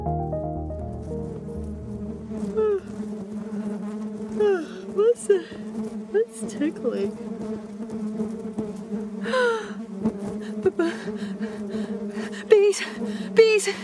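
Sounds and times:
swarm of bees buzzing: 0.0 - 13.8
speech: 6.2 - 9.4.

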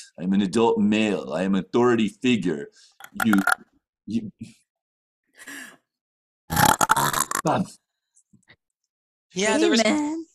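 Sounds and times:
speech: 0.2 - 4.6, 6.5 - 7.8, 9.3 - 10.3
loud drawn-out burp: 6.5 - 7.7.

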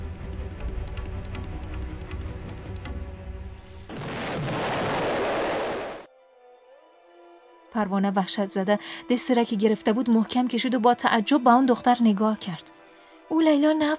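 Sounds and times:
landmine explosion: 3.9 - 6.0
speech: 7.8 - 13.9.

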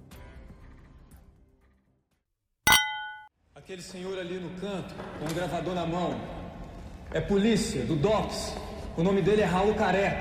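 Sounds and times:
wine glasses clinking in a toast: 2.7 - 3.3
speech: 3.7 - 6.4, 7.1 - 10.1.

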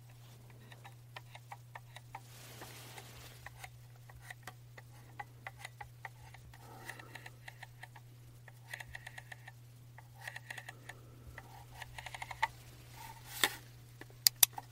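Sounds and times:
trackball mouse clicks: 0.0 - 2.3, 3.4 - 12.6
steady low hum: 0.0 - 14.7.

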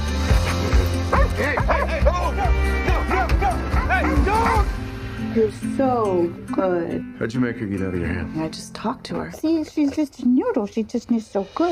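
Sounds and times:
dog barking and yipping excitedly: 1.0 - 2.2
laughter: 1.1 - 4.8
speech: 5.4 - 11.7.

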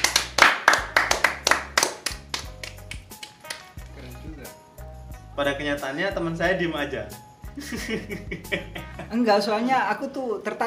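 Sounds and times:
sharp hand claps in an uneven rhythm: 0.0 - 4.0
speech: 5.4 - 10.6
laughter: 7.6 - 9.1.

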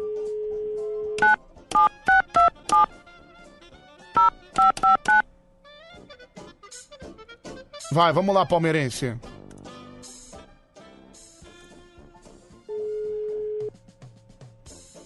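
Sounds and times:
telephone dial tone: 0.0 - 2.9, 12.7 - 13.7
telephone keypad DTMF beeps for a phone call: 1.2 - 2.9, 4.2 - 5.2
speech: 7.9 - 9.3.

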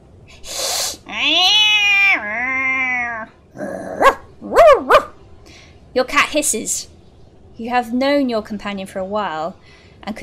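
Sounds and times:
dog yelping: 1.1 - 3.3, 3.9 - 5.2
long drawn-out wailing cry: 1.1 - 4.0
dog barking: 4.0 - 5.2
speech: 6.0 - 6.9, 7.6 - 10.2.

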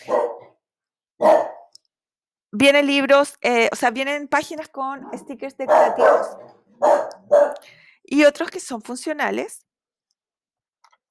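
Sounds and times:
dog barking: 0.0 - 0.6, 1.2 - 1.7, 5.0 - 7.6
speech: 2.5 - 7.0, 8.1 - 9.7.

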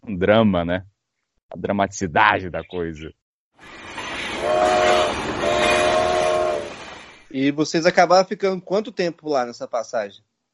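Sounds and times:
speech: 0.1 - 0.9, 1.5 - 3.8, 7.3 - 10.3
moving train rumbling: 3.6 - 7.5
train horn blasts: 4.4 - 7.0.

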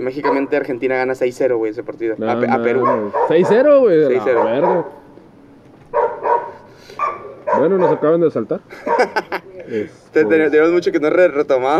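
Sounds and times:
speech: 0.0 - 5.0, 7.6 - 11.7
dogs barking loud and fairly close: 0.1 - 0.8, 2.5 - 5.1, 5.9 - 8.2, 8.8 - 9.3
laughter: 8.7 - 9.8.

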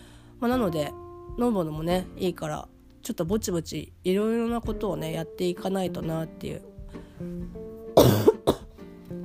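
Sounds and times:
speech: 0.4 - 8.3
person recovering from illness coughing at home: 8.0 - 8.7.

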